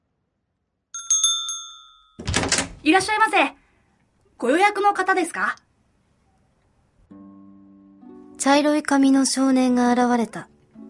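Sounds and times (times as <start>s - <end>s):
doorbell chime: 1.0s - 2.2s
speech: 2.2s - 3.6s, 4.4s - 5.6s, 8.4s - 10.5s.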